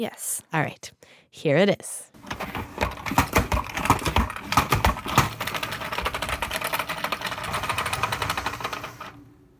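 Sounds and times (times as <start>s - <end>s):
speech: 0.0s - 2.6s
salad spinner whirring and rattling: 2.2s - 9.4s.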